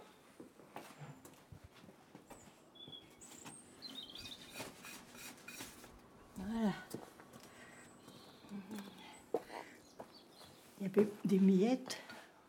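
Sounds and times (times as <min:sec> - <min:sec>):
small birds chirping: 0:02.4 - 0:04.9, 0:07.5 - 0:10.9
speech: 0:10.8 - 0:12.0.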